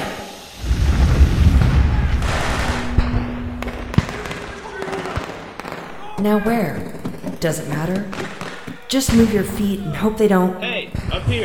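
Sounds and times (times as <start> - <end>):
smoke bomb going off with a loud broad rushing hiss: 0.0 - 2.8
sharp cracks: 0.6 - 9.8
speech: 6.2 - 8.3, 8.9 - 11.4.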